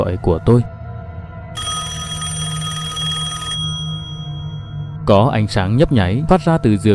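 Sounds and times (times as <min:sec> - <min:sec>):
speech: 0:00.0 - 0:00.8, 0:05.1 - 0:06.9
electronic telephone ring beside a bed at night: 0:01.6 - 0:05.0.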